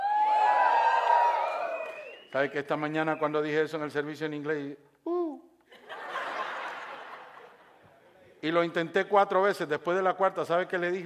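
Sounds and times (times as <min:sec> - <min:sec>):
large group of people shouting and cheering in praise of God's mercy: 0:00.0 - 0:02.3
speech: 0:02.3 - 0:04.9, 0:08.4 - 0:11.0
laughter: 0:05.7 - 0:07.9.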